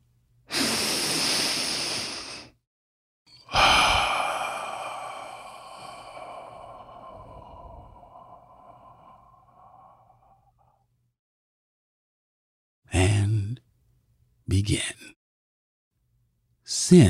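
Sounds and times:
deep breath: 0:00.5 - 0:02.6, 0:03.3 - 0:10.8
speech: 0:14.6 - 0:15.0.

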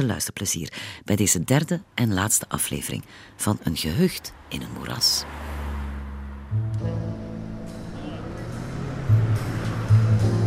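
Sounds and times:
speech: 0:00.0 - 0:05.6
city street traffic at a bus stop: 0:01.5 - 0:10.4
droning idle hum of vehicle engines: 0:06.0 - 0:10.4.

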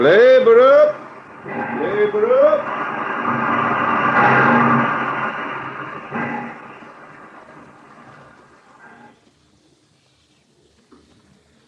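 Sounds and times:
speech: 0:00.0 - 0:01.0, 0:01.8 - 0:03.4
train slowing to a halt at a station: 0:00.0 - 0:09.2
brief burst of train hiss or clatter: 0:00.0 - 0:11.6.

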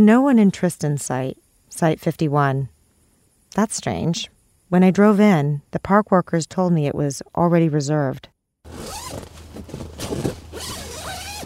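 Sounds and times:
speech: 0:00.0 - 0:02.7, 0:03.5 - 0:09.3
tent zipper being pulled closed at a campsite: 0:08.7 - 0:11.4.

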